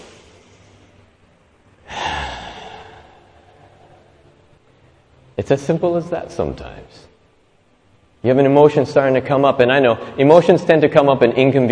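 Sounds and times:
deep breath in: 1.9s - 4.2s
speech: 5.4s - 7.1s, 8.2s - 11.6s.

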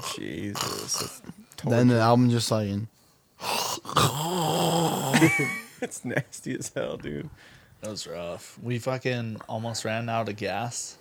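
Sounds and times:
person imitating loud snoring: 0.0s - 1.2s, 3.4s - 5.3s
speech: 0.2s - 4.6s, 5.2s - 10.9s.

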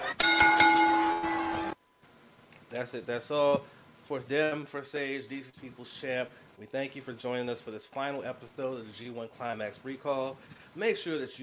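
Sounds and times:
wrestling ring bell ringing: 0.2s - 1.5s
speech: 2.8s - 11.4s.

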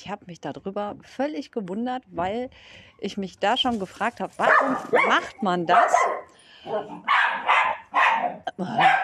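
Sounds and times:
speech: 0.0s - 7.6s, 8.2s - 9.0s
several dogs barking: 4.4s - 9.0s.

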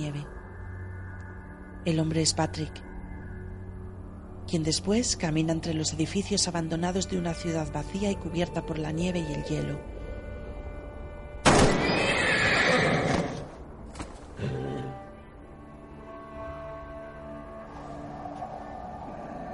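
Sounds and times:
speech: 1.8s - 2.9s, 4.5s - 9.9s
dying horse whinnying in a snow-covered abandoned city: 11.8s - 13.6s, 14.4s - 15.0s.

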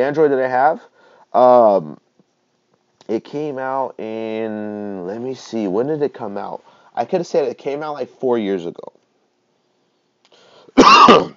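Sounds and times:
speech: 0.0s - 2.0s, 3.1s - 9.0s, 10.8s - 11.3s
person coughing: 10.8s - 11.3s.

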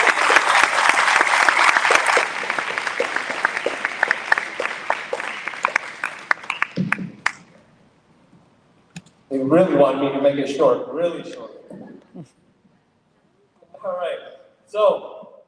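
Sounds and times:
crowd at a school address applauding: 0.0s - 7.5s
speech: 9.5s - 11.6s.

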